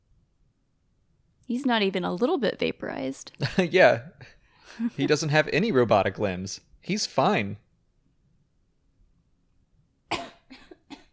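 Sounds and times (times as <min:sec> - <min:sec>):
speech: 0:01.5 - 0:07.6
sick person coughing: 0:10.1 - 0:11.1.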